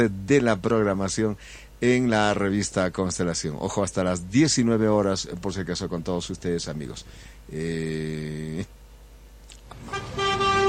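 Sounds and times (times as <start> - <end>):
speech: 0.0 - 8.7
car horn blaring in a traffic jam on city streets: 9.8 - 10.6.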